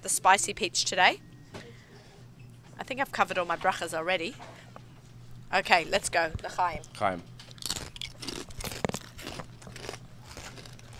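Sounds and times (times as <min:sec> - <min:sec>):
speech: 0:00.0 - 0:01.6, 0:02.8 - 0:04.6, 0:05.5 - 0:07.5
low steady hum: 0:00.0 - 0:10.9
crackly chewing of food: 0:07.5 - 0:10.9
crunchy bite into food: 0:07.5 - 0:10.9.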